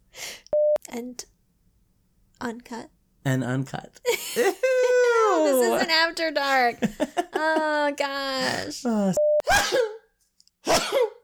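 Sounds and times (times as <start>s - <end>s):
speech: 1.0s - 1.3s, 2.4s - 9.9s
loud sneezes: 8.8s - 11.2s.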